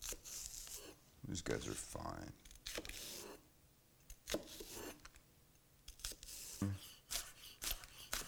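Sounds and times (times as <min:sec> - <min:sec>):
knife slicing green onions on a cutting board: 0:00.0 - 0:01.0, 0:02.4 - 0:03.4, 0:04.2 - 0:05.1, 0:05.9 - 0:08.2
speech: 0:01.3 - 0:03.1.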